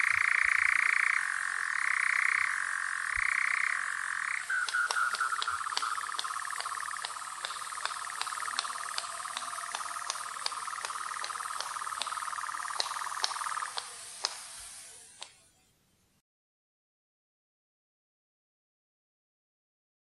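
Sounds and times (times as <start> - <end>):
European nightjar churring: 0.0 - 14.0
sharp clicks: 4.4 - 15.4.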